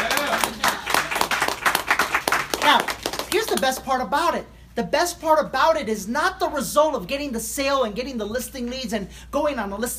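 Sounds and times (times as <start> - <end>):
audience applause: 0.0 - 3.4
speech: 3.6 - 9.9.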